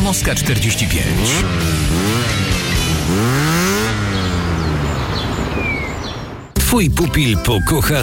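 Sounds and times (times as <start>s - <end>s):
speech: 0.1s - 3.6s, 6.7s - 8.0s
motorcycle engine revving: 0.4s - 6.6s.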